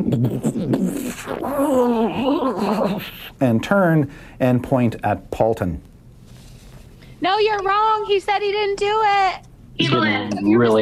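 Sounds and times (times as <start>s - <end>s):
voice imitating a tree creaking and groaning: 0.0s - 3.4s
speech: 0.0s - 5.9s, 7.2s - 10.8s.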